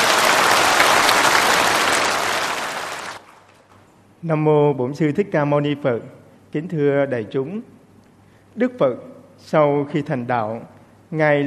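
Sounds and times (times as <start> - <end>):
applause from a large audience in a Buddhist temple lecture hall: 0.0 - 3.5
speech: 4.2 - 7.8, 8.6 - 11.4.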